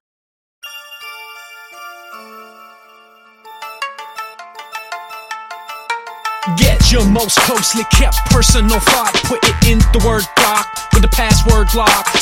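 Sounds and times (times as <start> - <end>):
bright chiming melody of plinked notes: 0.6 - 7.4
held synth chords in a nerdcore hip hop intro: 0.6 - 8.9
speech: 6.5 - 12.2.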